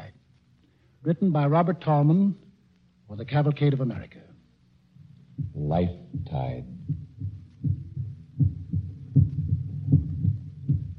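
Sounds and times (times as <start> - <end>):
speech: 1.0 - 2.4, 3.1 - 4.3, 5.4 - 6.9
human heartbeat with double thumps: 5.4 - 10.9.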